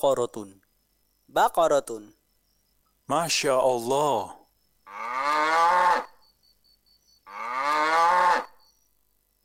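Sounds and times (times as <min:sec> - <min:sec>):
speech: 0:00.0 - 0:00.6, 0:01.3 - 0:02.2, 0:03.1 - 0:05.1
cow mooing: 0:04.9 - 0:06.2, 0:07.3 - 0:08.6.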